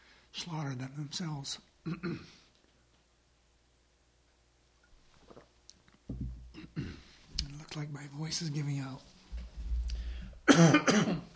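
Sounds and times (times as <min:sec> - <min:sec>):
speech: 0:00.4 - 0:02.4, 0:07.8 - 0:09.1, 0:10.6 - 0:11.3
rough coughs or throat-clearing: 0:01.9 - 0:02.4, 0:06.6 - 0:07.1, 0:10.4 - 0:11.3
rumble: 0:09.3 - 0:10.5.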